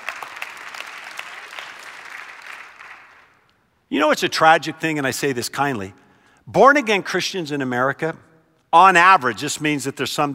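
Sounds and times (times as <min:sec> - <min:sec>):
audience applauding: 0:00.0 - 0:03.4
speech: 0:03.9 - 0:10.3.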